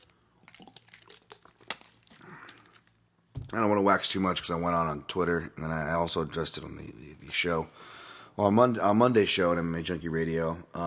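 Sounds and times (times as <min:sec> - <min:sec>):
plastic bottle crinkling and crunching: 0:00.0 - 0:03.6
speech: 0:03.5 - 0:10.8.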